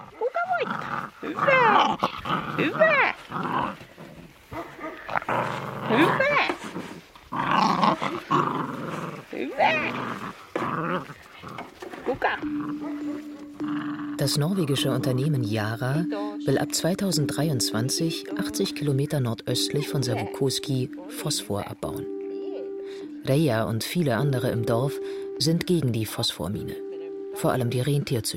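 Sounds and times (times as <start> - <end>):
husky puppies growling and yapping: 0.0 - 14.6
speech: 0.6 - 3.5, 14.2 - 22.1, 23.2 - 28.3.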